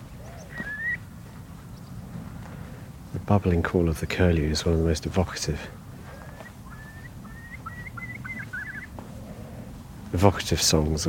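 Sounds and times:
Eurasian oystercatcher alarm calls by salt marshes on the Menai Straits: 0:00.0 - 0:01.1, 0:05.8 - 0:09.9
low background rumble: 0:00.0 - 0:11.0
speech: 0:03.3 - 0:05.8, 0:10.2 - 0:11.0.

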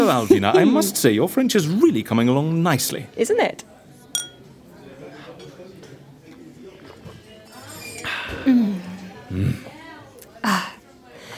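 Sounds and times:
murmur of voices: 0:00.0 - 0:11.3
speech: 0:00.1 - 0:03.8, 0:08.4 - 0:08.7
champagne glasses clinking in a toast: 0:04.1 - 0:04.5, 0:07.4 - 0:08.1.

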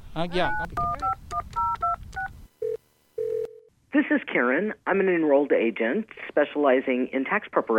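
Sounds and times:
speech: 0:00.2 - 0:01.8, 0:04.0 - 0:07.7
cell phone keypad dialing tones: 0:00.5 - 0:03.7.

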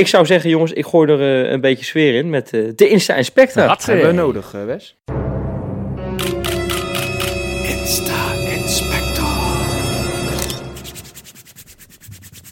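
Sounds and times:
speech: 0:00.0 - 0:05.2
sustained musical jingle: 0:05.1 - 0:11.2
hands rubbing together: 0:10.7 - 0:12.5.

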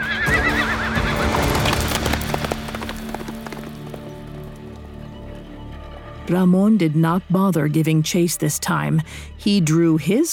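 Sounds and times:
black horse galloping into the desert: 0:01.1 - 0:04.8
speech: 0:06.3 - 0:10.3.

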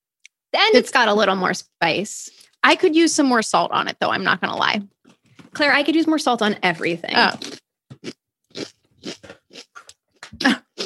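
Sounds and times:
speech: 0:00.7 - 0:09.4
crisp snack being chewed close to microphone: 0:07.4 - 0:10.8.

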